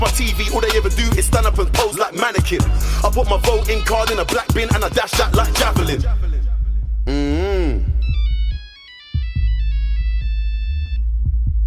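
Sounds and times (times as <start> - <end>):
speech: 0.0 - 1.3, 2.5 - 6.2
heavy bass beat of a rap track: 0.0 - 11.6
mobile phone ringtone electronic melody: 8.0 - 11.0.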